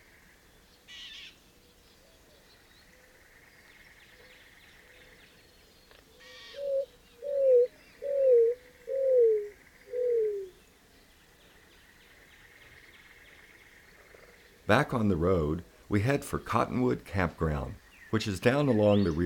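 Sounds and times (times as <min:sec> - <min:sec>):
greater roadrunner giving low mournful coos from mesquite and creosote bushes: 0:06.6 - 0:10.5
speech: 0:14.7 - 0:19.2.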